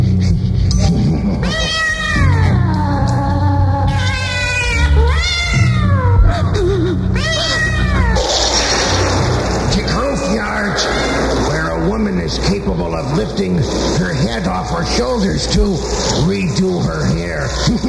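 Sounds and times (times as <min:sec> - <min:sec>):
steady low hum: 0:00.0 - 0:17.8
cat yowling in long drawn-out meows: 0:01.4 - 0:03.2, 0:03.8 - 0:06.4, 0:07.2 - 0:09.1, 0:10.7 - 0:11.5.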